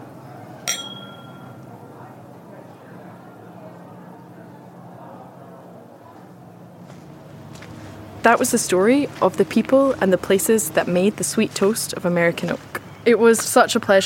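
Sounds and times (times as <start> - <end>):
low murmur of room noise and voices: 0.0 - 14.0
glasses clinking in a toast: 0.7 - 1.6
speech: 8.2 - 14.0.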